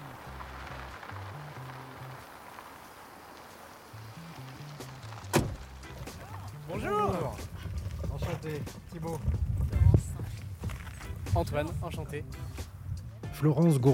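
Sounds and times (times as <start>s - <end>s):
steady outdoor noise: 0.0s - 13.9s
car door thunk: 5.3s - 5.6s
speech: 8.4s - 10.0s, 11.4s - 12.7s, 13.4s - 13.9s.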